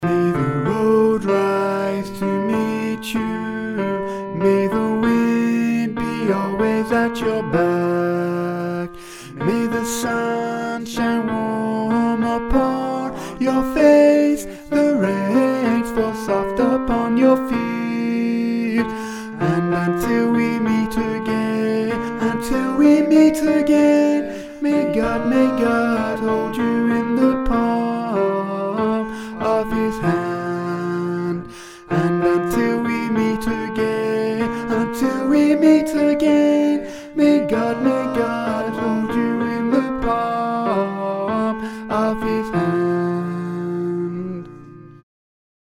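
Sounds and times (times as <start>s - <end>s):
tenor singing: 0.0s - 45.0s.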